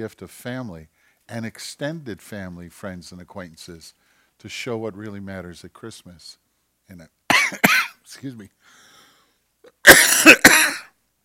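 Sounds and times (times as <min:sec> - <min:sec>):
speech: 0:00.0 - 0:08.9
person with a tickly throat coughing: 0:07.3 - 0:08.0, 0:09.7 - 0:10.9.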